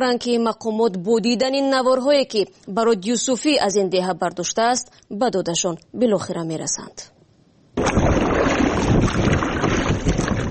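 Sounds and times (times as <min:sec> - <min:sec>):
speech: 0:00.0 - 0:07.2, 0:08.8 - 0:09.5
rubber boat crossing the Kafirnigan River, steady rush of water: 0:07.8 - 0:10.4
wind buffeting the microphone: 0:07.8 - 0:10.4.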